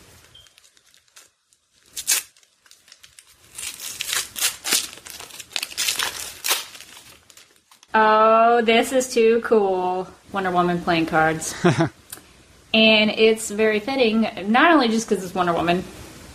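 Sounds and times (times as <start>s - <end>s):
paper crinkling and tearing as a small package is unwrapped: 0.0s - 7.9s
speech: 7.9s - 12.0s, 12.7s - 16.0s.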